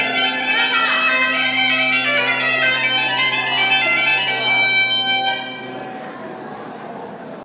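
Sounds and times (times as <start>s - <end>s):
bagpipe: 0.0s - 5.9s.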